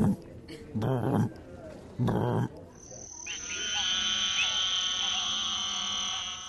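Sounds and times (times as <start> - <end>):
voice imitating African bullfrog croaks: 0.0 - 1.4, 2.0 - 2.6
high-pitched trilling drone: 3.2 - 6.4.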